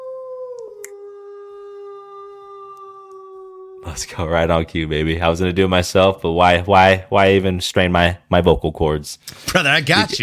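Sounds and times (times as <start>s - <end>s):
wolf howling: 0.0s - 3.9s
speech: 3.8s - 10.2s.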